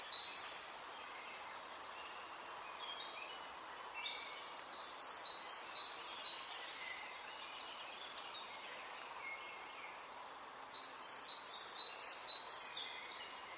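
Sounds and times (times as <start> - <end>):
great tit Parus major singing: 0.0 - 0.8, 4.0 - 8.6, 10.8 - 13.5
soft bird chirps: 0.0 - 13.5.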